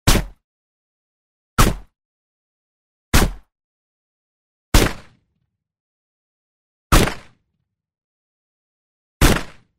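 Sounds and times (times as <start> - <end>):
rifle with a silencer firing: 4.8 - 5.2, 6.9 - 7.4, 9.2 - 9.7.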